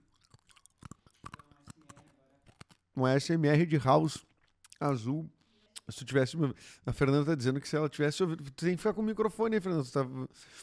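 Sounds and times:
blue hard mint candy crunched between teeth: 0:00.0 - 0:03.0
speech: 0:03.0 - 0:10.6.

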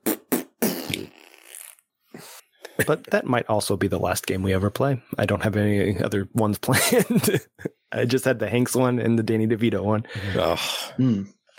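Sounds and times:
farting: 0:00.0 - 0:02.4
speech: 0:02.8 - 0:11.4.

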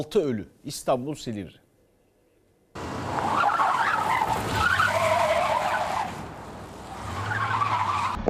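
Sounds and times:
speech: 0:00.0 - 0:01.6
tires skidding and squealing as a dump truck crashes in Silivri Istanbul Turkey: 0:02.8 - 0:08.2.

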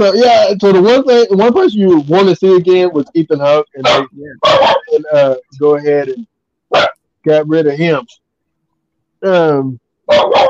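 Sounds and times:
speech: 0:00.0 - 0:08.2, 0:09.2 - 0:10.4
dog barking and yowling: 0:03.8 - 0:05.0, 0:06.7 - 0:07.0, 0:10.1 - 0:10.4.

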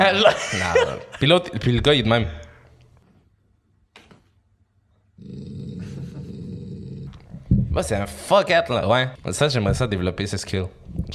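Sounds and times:
laughter: 0:00.0 - 0:01.2
speech: 0:00.0 - 0:02.4, 0:07.8 - 0:11.1
person imitating a man's angry growl: 0:05.2 - 0:07.8.

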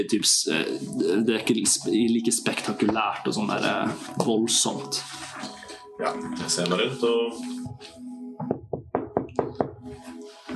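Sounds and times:
speech: 0:00.0 - 0:08.6
firm knocking on a door: 0:08.4 - 0:09.9.

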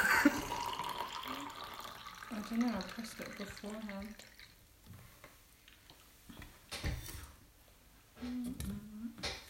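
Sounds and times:
drink pouring into a glass: 0:00.0 - 0:04.7
speech: 0:02.5 - 0:04.4, 0:08.2 - 0:08.9.

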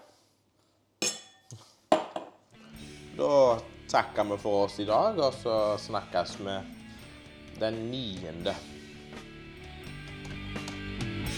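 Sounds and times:
glasses clinking in a toast: 0:01.0 - 0:02.2
speech: 0:03.2 - 0:06.8, 0:07.6 - 0:08.8.

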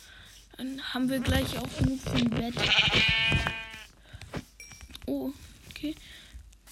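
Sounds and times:
speech: 0:00.6 - 0:03.5
sheep bleating in a video game: 0:02.5 - 0:03.9.

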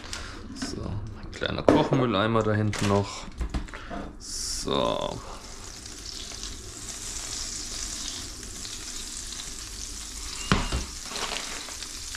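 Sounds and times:
speech: 0:01.4 - 0:03.4, 0:04.7 - 0:05.4
butter and oil heating and bubbling in a frying pan: 0:05.2 - 0:12.1.

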